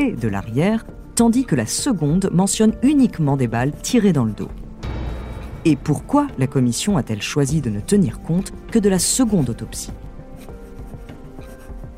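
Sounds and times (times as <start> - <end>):
speech: 0.0 - 4.6, 5.6 - 10.1
pen scratching on paper: 3.6 - 11.9.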